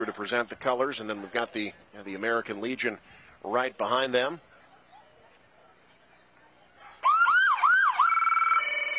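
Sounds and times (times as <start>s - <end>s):
speech: 0.2s - 4.5s
emergency vehicle siren wailing: 7.0s - 8.9s.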